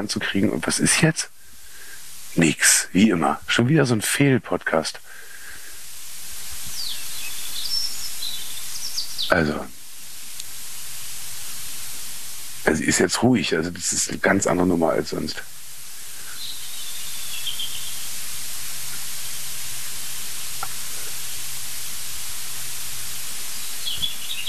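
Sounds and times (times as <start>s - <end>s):
speech: 0.0s - 1.4s, 2.3s - 5.2s, 9.3s - 9.8s, 12.6s - 15.5s
steady hiss: 0.0s - 24.4s
European robin singing in short phrases: 6.6s - 10.3s, 16.0s - 21.5s, 23.2s - 24.4s.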